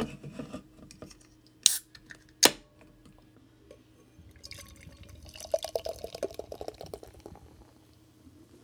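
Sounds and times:
cracks of amber ale being opened: 0.9s - 3.2s
amber ale pouring into a glass: 4.3s - 7.9s.

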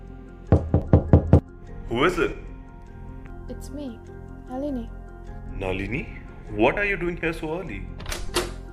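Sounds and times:
firm knocks on a wooden door: 0.5s - 1.5s
speech: 1.9s - 2.5s, 3.5s - 5.0s, 5.6s - 7.9s.

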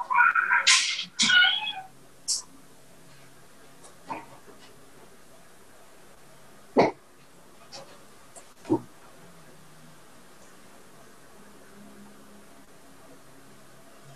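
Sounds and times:
kitten meowing: 0.0s - 1.9s
faint short kitten squeaks: 0.0s - 2.4s.

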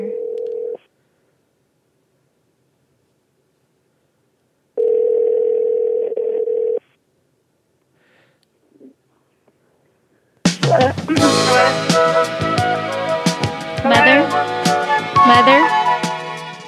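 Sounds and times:
outgoing phone call ringing tone: 0.0s - 0.8s, 4.8s - 6.8s
loud voices: 10.6s - 16.0s
busy noise: 10.6s - 16.6s.

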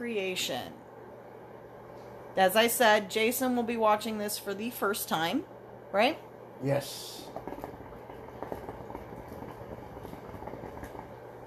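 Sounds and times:
speech: 0.0s - 0.8s, 2.4s - 7.6s
hookah water pipe bubbling: 7.0s - 11.4s.

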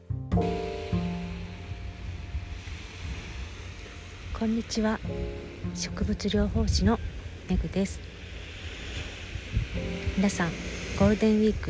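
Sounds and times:
light wind buffeting the microphone: 0.4s - 11.6s
low thump of a wave breaking: 0.4s - 11.6s
steady ocean surf with hissing roar: 0.4s - 11.6s
speech: 4.4s - 8.1s, 9.8s - 11.6s.

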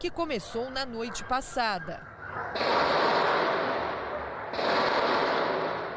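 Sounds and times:
speech: 0.0s - 3.1s
gunfire bursts during a shootout with long rolling echo: 2.5s - 5.9s.

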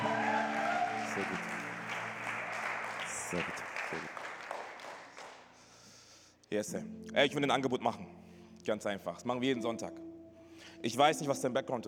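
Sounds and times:
audience applause with many hands clapping: 0.0s - 5.5s
speech: 1.2s - 1.5s, 3.3s - 4.2s, 6.5s - 11.8s.

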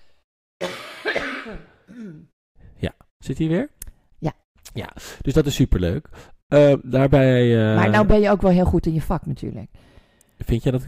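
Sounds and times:
person coughing: 0.6s - 2.3s
speech: 1.5s - 10.8s.

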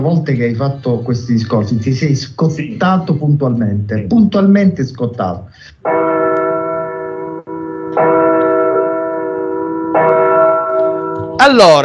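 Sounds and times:
speech: 0.0s - 6.3s, 11.5s - 11.8s
laughter: 0.3s - 4.4s
church bells tolling a death knell: 5.8s - 11.8s.

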